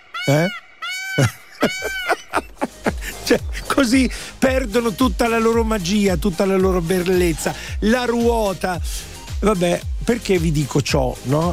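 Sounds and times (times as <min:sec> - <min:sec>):
person's voice imitating a peacock's call: 0:00.1 - 0:03.6
speech: 0:00.3 - 0:00.6, 0:03.3 - 0:11.5
laughter: 0:00.3 - 0:05.1.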